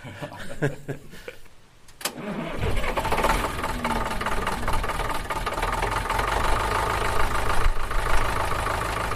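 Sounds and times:
laughter: 0.0s - 1.5s
1954 Farmall EMD 50 tractor engine starting and idling: 2.1s - 9.1s.

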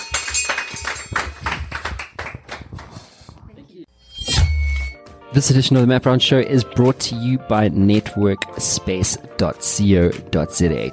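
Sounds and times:
applause with many hands clapping rapidly: 0.0s - 3.2s
speech: 5.3s - 10.9s.

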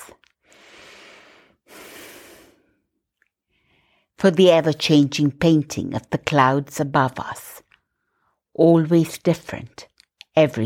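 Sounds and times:
person inhaling and exhaling during breath prayer: 0.4s - 2.9s, 3.5s - 4.2s
speech: 4.2s - 7.6s, 8.6s - 10.6s.

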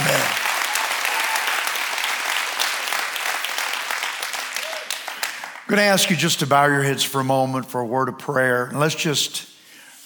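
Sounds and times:
large crowd applauding: 0.0s - 5.9s
speech: 5.7s - 9.5s.

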